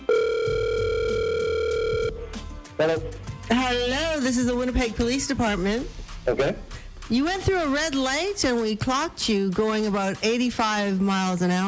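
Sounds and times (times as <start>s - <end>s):
telephone dial tone: 0.0s - 2.2s
speech: 2.8s - 11.6s.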